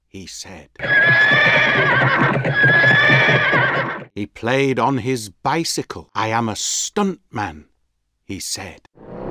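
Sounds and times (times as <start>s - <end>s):
speech: 0.1s - 7.7s, 8.3s - 9.2s
horse neighing: 0.8s - 4.1s.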